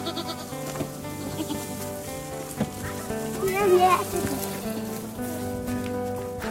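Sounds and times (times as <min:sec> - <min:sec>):
busy background of other animal calls: 0:00.0 - 0:05.1
white goats bleating: 0:00.0 - 0:05.5
steady outdoor murmur: 0:00.0 - 0:06.4.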